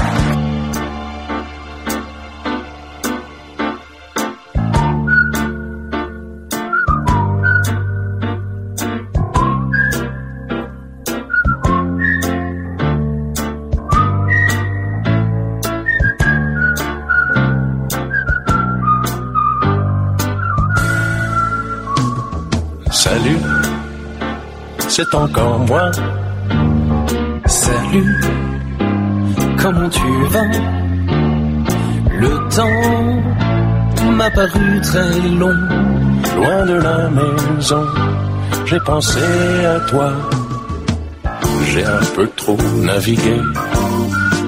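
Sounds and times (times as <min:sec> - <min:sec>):
instrumental accompaniment with rhythmic chords: 0:00.2 - 0:44.4
two people whistling a song melody together: 0:04.7 - 0:08.2, 0:09.4 - 0:10.4, 0:11.1 - 0:12.7, 0:13.8 - 0:15.0, 0:15.8 - 0:24.2, 0:24.8 - 0:26.0, 0:27.5 - 0:28.6, 0:29.6 - 0:31.0, 0:32.0 - 0:33.4, 0:34.0 - 0:44.4
speech: 0:25.0 - 0:26.2, 0:27.9 - 0:28.3, 0:29.7 - 0:30.8, 0:32.2 - 0:33.4, 0:34.2 - 0:40.4, 0:41.8 - 0:43.9.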